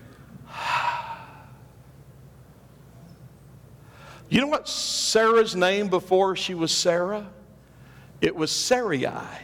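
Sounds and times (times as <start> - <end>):
voiced breathy exhale demonstrating the letter H: 0.5 - 1.6
speech: 4.3 - 7.4, 8.2 - 9.4.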